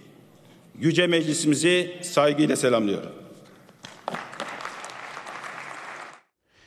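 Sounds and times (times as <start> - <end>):
speech: 0.8 - 3.2
crowd applause in a parliament chamber: 4.0 - 6.3.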